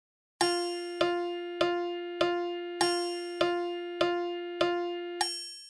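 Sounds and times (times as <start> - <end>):
two musical notes: 0.4 - 5.2.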